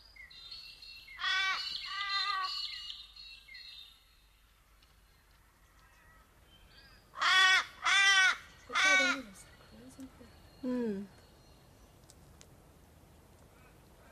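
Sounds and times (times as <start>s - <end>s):
crows cawing: 1.2s - 2.6s, 7.2s - 9.4s.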